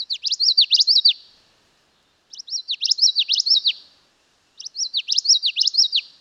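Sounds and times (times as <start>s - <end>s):
common yellowthroat song: 0.0s - 1.2s, 2.3s - 3.9s, 4.6s - 6.1s.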